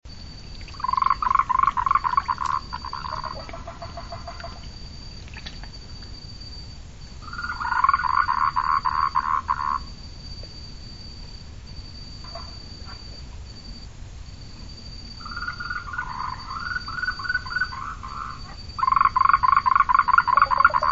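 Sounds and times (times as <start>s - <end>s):
Yaeyama tree frog calling: 0.6s - 5.8s, 7.2s - 10.0s, 12.2s - 13.1s, 15.2s - 20.9s.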